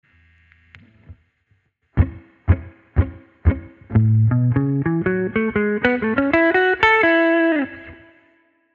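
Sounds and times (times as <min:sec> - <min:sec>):
blues music track: 0:02.0 - 0:08.4.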